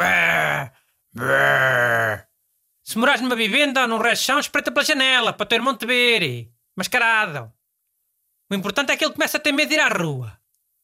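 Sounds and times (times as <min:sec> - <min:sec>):
voice imitating monster groaning noises: 0:00.0 - 0:01.4
speech: 0:01.2 - 0:01.4, 0:02.9 - 0:07.6, 0:08.5 - 0:10.4.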